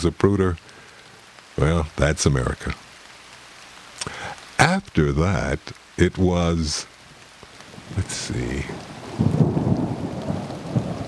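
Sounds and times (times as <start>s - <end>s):
speech: 0.0s - 0.7s, 1.6s - 2.8s, 4.0s - 6.9s, 7.9s - 9.4s
steady rain pouring down: 0.0s - 11.0s
low rumbling thunder: 7.8s - 11.0s.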